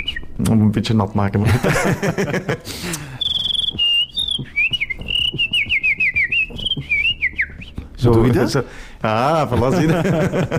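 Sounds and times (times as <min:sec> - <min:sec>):
person whistling with the mouth: 0:00.0 - 0:00.4, 0:02.9 - 0:08.0
speech: 0:00.4 - 0:03.1, 0:08.0 - 0:10.5
laughter: 0:01.4 - 0:03.2, 0:08.1 - 0:10.5.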